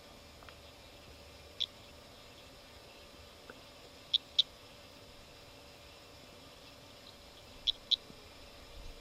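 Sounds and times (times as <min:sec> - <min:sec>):
faint hiss: 0:00.0 - 0:09.0
Eastern sedge frog Litoria fallax chirping: 0:00.4 - 0:02.6, 0:04.0 - 0:04.6, 0:06.9 - 0:08.2.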